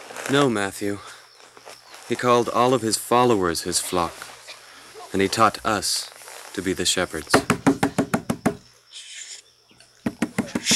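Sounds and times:
speech: 0.3s - 1.1s, 2.1s - 4.3s, 5.1s - 7.5s
faint rustling: 1.0s - 7.5s
man knocking rapidly and sharply on a door: 7.3s - 8.6s, 10.0s - 10.7s.

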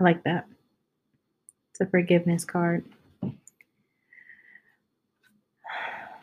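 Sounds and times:
speech: 0.0s - 0.6s, 1.8s - 3.4s
louder rushing exhale: 5.7s - 6.2s
slow slightly whistling breath drawn in: 5.7s - 6.2s.

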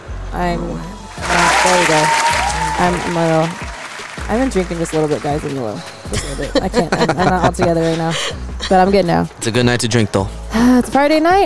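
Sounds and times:
several people talking and laughing loudly: 0.0s - 11.4s
speech: 0.3s - 3.7s, 4.3s - 11.4s
crowd clapping: 1.2s - 8.3s.

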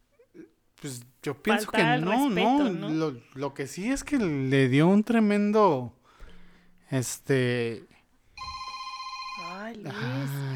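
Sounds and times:
speech: 0.4s - 6.0s, 6.9s - 8.5s, 9.7s - 10.5s
mobile phone ringing with a repeating electronic tone: 8.4s - 10.1s.

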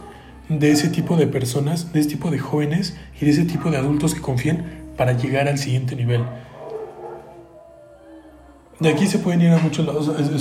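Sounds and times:
speech: 0.5s - 6.5s, 8.8s - 10.4s
dogs howling and barking: 3.5s - 4.2s, 6.0s - 9.3s
dogs whining: 6.1s - 8.0s.

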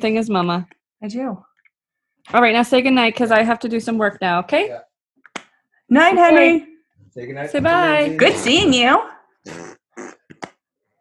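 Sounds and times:
speech: 0.0s - 1.5s, 2.2s - 4.9s, 5.9s - 9.7s
loud fart: 9.4s - 10.6s.

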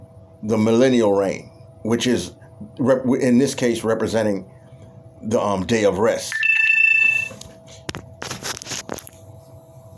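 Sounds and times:
speech: 0.4s - 4.5s, 5.2s - 6.4s
phone low-battery alert high electronic tone: 6.3s - 7.4s.

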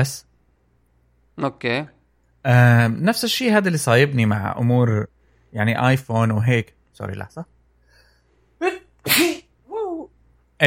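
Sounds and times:
speech: 0.0s - 0.3s, 1.4s - 7.5s, 8.6s - 9.4s
person sneezing loudly: 8.6s - 9.5s.

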